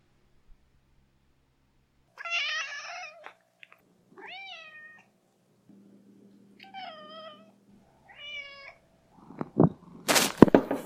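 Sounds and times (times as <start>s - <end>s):
cat meowing: 2.2s - 3.4s, 4.2s - 5.1s, 6.6s - 7.5s, 8.1s - 8.8s
rustling clatter: 10.0s - 10.8s.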